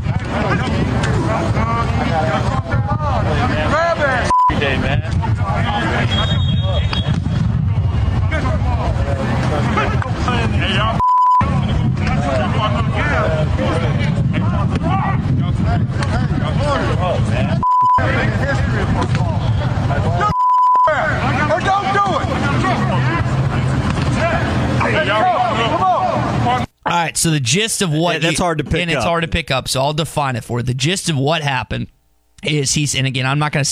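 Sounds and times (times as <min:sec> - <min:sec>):
people shouting and talking at college football practice: 0:00.0 - 0:29.2
censor beeps: 0:04.3 - 0:04.6, 0:11.0 - 0:11.5, 0:17.6 - 0:18.2, 0:20.3 - 0:21.0
speech: 0:27.2 - 0:33.7.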